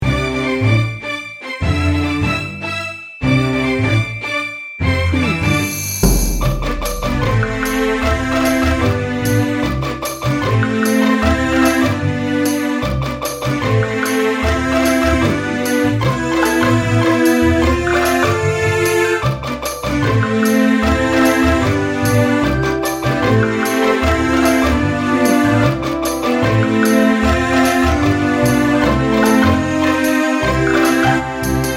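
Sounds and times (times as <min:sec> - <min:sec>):
game show music without drums: 0:00.7 - 0:31.7.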